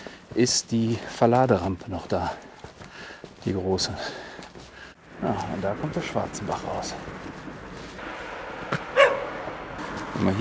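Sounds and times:
steady noise: 0.0 - 10.4
speech: 0.4 - 2.5, 3.4 - 4.3, 5.2 - 7.2, 10.2 - 10.4
dog barking while being teased into yapping: 8.9 - 9.3.

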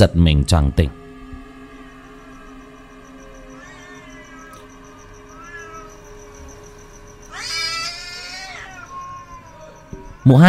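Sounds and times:
speech: 0.0 - 1.0, 10.3 - 10.4
faint steady tone: 0.0 - 10.4
black cat meowing: 3.5 - 6.5, 7.3 - 10.3.

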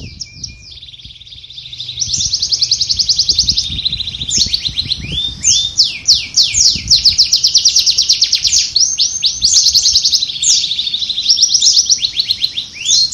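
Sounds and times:
low background rumble: 0.0 - 7.5
Atlantic canary song with fast rolling trills: 0.0 - 13.1.

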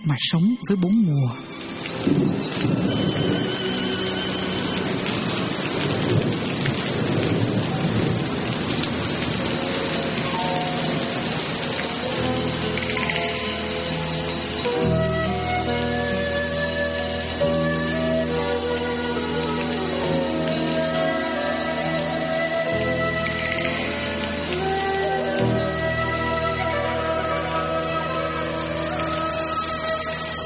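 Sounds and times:
speech: 0.0 - 3.8
steady rain pouring: 0.0 - 30.4
deep rolling thunder: 2.0 - 11.3.

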